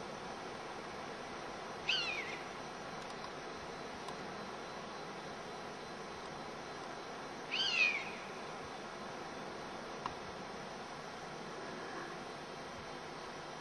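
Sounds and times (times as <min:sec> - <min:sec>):
background hiss: 0:00.0 - 0:13.6
European honey buzzard anger calls in Hexhamshire: 0:01.8 - 0:02.5, 0:07.5 - 0:08.3.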